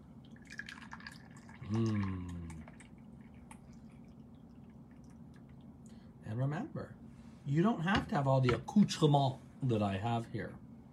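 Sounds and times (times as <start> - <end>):
tea being poured into a cup: 0.1 - 5.8
speech: 1.7 - 2.3, 6.4 - 10.6.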